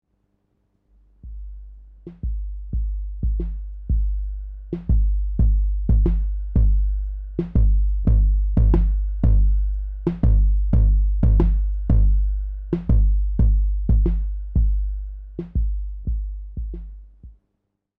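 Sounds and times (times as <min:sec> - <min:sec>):
filtered 808 drum machine beat with drive: 0:01.2 - 0:17.2.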